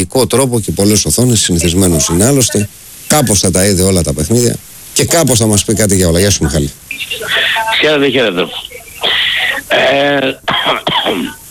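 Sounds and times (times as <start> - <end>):
speech: 0.0 - 11.4
man clearing throat: 9.0 - 11.4
man coughing: 9.0 - 11.4.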